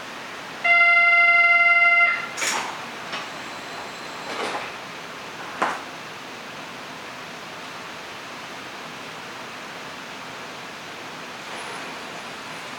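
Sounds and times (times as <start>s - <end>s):
steady electronic monorail door warning tone: 0.7s - 2.3s, 3.1s - 4.5s
monorail train doors sliding shut with a soft whoosh: 2.1s - 6.1s, 11.4s - 12.7s.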